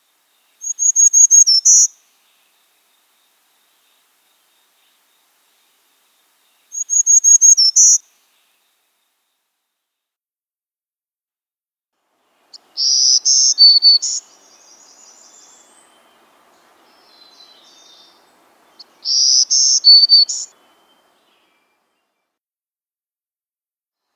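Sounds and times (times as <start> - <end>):
Black-throated Green Warbler singing: 0.0 - 8.7, 12.5 - 22.2.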